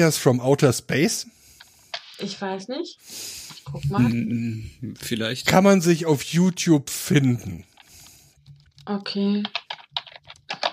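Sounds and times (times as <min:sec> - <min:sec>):
speech: 0:00.0 - 0:01.4, 0:02.2 - 0:07.7, 0:08.8 - 0:09.6
keystrokes on a computer keyboard typing a search: 0:07.7 - 0:10.7.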